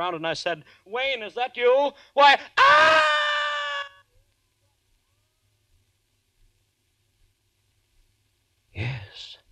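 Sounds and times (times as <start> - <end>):
speech: 0.0 - 3.1
loud high-pitched human scream: 2.2 - 4.1.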